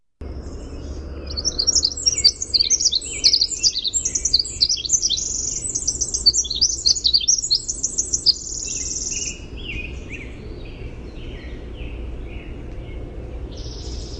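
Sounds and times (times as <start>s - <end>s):
winter wren song with rapid high notes and buzzy trills: 0.2s - 14.1s
winter wren lower chips: 1.3s - 9.4s.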